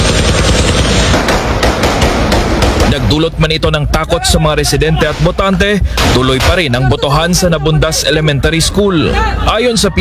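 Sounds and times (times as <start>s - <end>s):
gunfire from government forces and tanks shooting at armed groups in farmland: 0.0s - 3.5s, 5.0s - 6.8s
speech: 3.1s - 9.9s.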